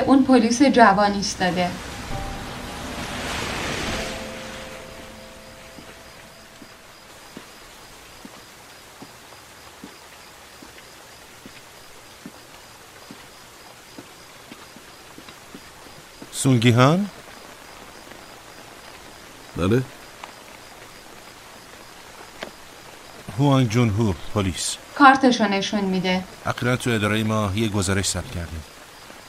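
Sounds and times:
speech: 0.1 - 1.9, 16.4 - 17.2, 19.6 - 20.0, 23.4 - 28.8
rain falling on a street: 0.1 - 29.2
drops of rain ticking: 5.2 - 16.4.

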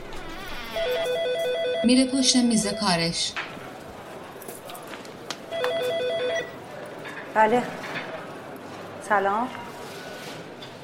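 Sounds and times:
telephone ringing at an office desk with electronic warbling trill: 0.8 - 3.3, 5.5 - 6.6
speech: 1.8 - 3.4, 7.4 - 7.9, 9.1 - 9.6.

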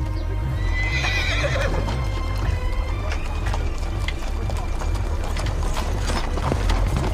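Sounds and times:
horse hooves clip-clopping: 0.1 - 7.1
horse whinnying: 0.6 - 2.1.

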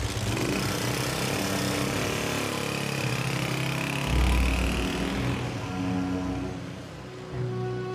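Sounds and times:
motorcycle engine running and pulling off: 0.0 - 6.3.

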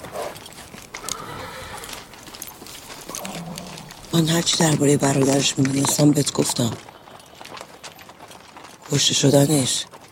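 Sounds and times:
horse hooves clopping as a rider dismounts: 0.0 - 10.1
horse neighing: 1.0 - 2.1, 3.1 - 4.2
speech: 4.2 - 6.9, 8.9 - 10.0.

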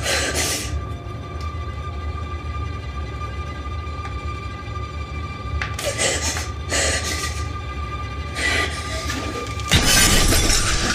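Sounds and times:
steady low hum: 0.0 - 10.9
mirror shattering, struck with perfume bottle: 9.7 - 10.9.

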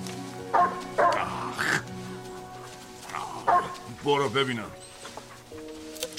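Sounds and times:
hungry dog barking and yipping: 0.5 - 1.2, 3.4 - 3.9
speech: 4.0 - 4.9.

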